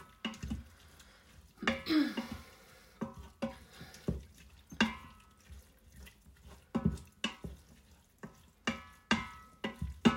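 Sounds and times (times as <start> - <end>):
scraping and stirring strokes in a pan: 0.0 - 10.1.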